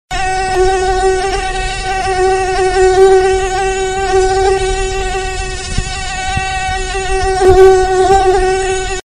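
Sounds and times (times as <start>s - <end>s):
bees buzzing: 0.1s - 9.0s.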